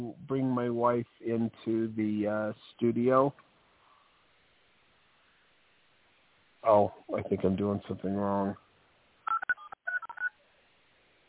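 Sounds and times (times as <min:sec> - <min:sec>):
speech: 0:00.0 - 0:03.5, 0:06.6 - 0:08.6
telephone keypad dialing tones: 0:09.3 - 0:10.3.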